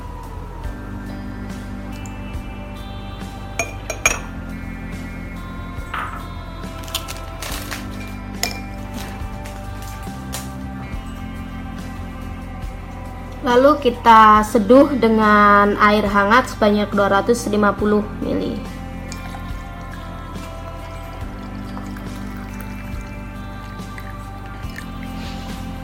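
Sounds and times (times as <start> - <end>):
glass clinking as ingredients and honey are put in: 3.6 - 4.4, 5.8 - 10.0, 19.1 - 25.1
speech: 13.5 - 18.7.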